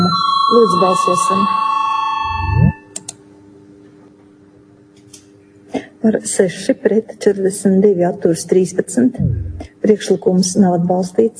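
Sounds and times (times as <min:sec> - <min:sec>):
electronic bell ringing in a parliament chamber to call a vote: 0:00.0 - 0:02.9
speech: 0:00.5 - 0:01.6, 0:06.0 - 0:11.3.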